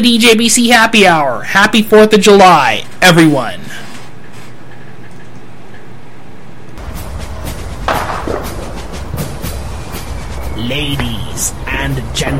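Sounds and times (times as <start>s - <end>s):
speech: 0.0s - 3.8s, 10.7s - 12.3s
fireworks exploding: 7.8s - 9.7s.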